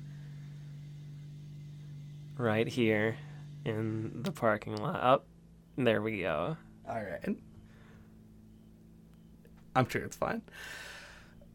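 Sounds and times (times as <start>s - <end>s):
car engine idling in a parking lot: 0.0s - 11.5s
speech: 2.4s - 7.5s, 9.8s - 11.0s.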